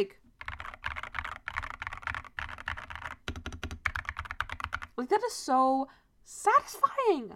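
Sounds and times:
speech: 0.0s - 0.2s, 5.0s - 7.3s
typing on a computer keyboard: 0.4s - 5.0s.

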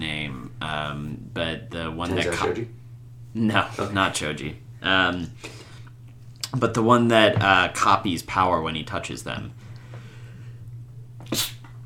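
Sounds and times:
low steady hum: 0.0s - 11.8s
speech: 0.7s - 2.8s, 3.4s - 5.6s, 6.5s - 9.6s, 11.3s - 11.6s
stifled sneeze: 11.3s - 11.6s.

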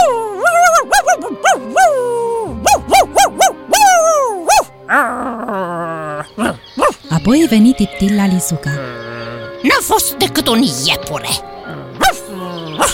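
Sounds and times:
small dog yelping loudly in a forest: 0.0s - 5.2s, 6.3s - 7.1s, 12.0s - 12.9s
speech: 7.2s - 9.0s, 9.7s - 11.5s.

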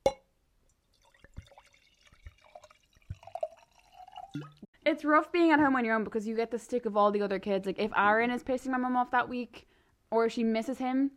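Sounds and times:
glass clink: 0.0s - 0.2s, 2.4s - 4.6s
wine pouring into a glass: 0.8s - 4.7s
speech: 4.4s - 11.1s.

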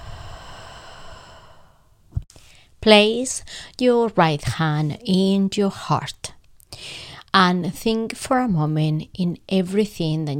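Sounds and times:
long slow deep exhale through the mouth: 0.0s - 2.6s
speech: 2.8s - 10.3s.

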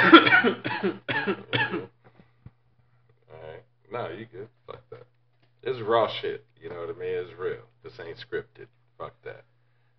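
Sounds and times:
person coughing harshly: 0.0s - 2.0s
speech: 0.4s - 1.5s, 5.8s - 9.4s.

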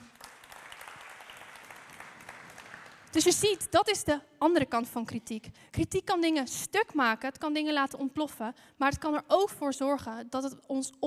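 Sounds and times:
audience applause: 0.0s - 3.2s
speech: 3.1s - 11.0s.

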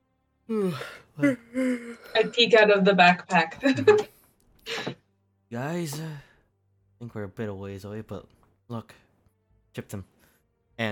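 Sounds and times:
person imitating a yawn: 0.5s - 2.2s
speech: 0.5s - 4.1s, 4.7s - 6.3s, 7.0s - 9.0s, 9.8s - 10.1s, 10.8s - 10.9s.

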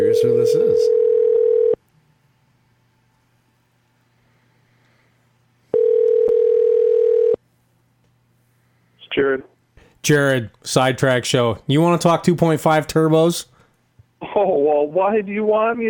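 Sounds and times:
speech: 0.1s - 1.0s, 10.0s - 13.5s, 14.3s - 15.8s
telephone number being dialed with long electronic tones: 0.9s - 1.8s, 5.8s - 7.4s.

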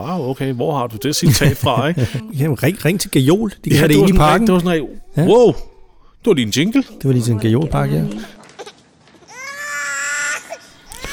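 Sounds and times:
speech: 0.0s - 8.4s
laughter: 1.0s - 4.9s
baby crying loudly: 4.0s - 6.1s, 8.4s - 11.1s.

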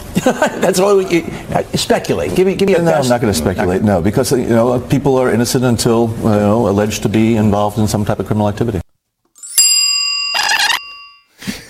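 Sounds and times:
speech: 0.2s - 8.8s
bright bell dinging: 9.4s - 11.4s.

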